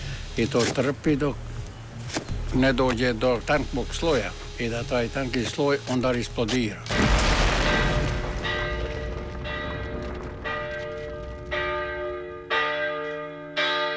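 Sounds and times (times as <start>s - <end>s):
speech: 0.4s - 1.5s, 2.5s - 7.0s
church bell in a bell tower in a historic town centre tolling: 7.0s - 13.9s.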